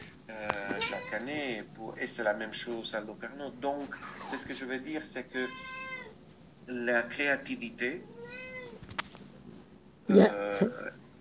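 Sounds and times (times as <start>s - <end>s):
speech: 0.3s - 5.8s, 6.7s - 8.4s, 10.1s - 11.1s
kitten meowing: 0.6s - 1.3s, 5.5s - 6.1s, 8.1s - 8.8s.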